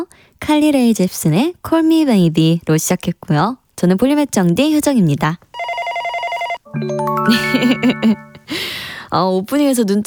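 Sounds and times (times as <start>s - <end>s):
speech: 0.0s - 5.5s, 6.7s - 10.0s
telephone ringing: 5.6s - 8.6s.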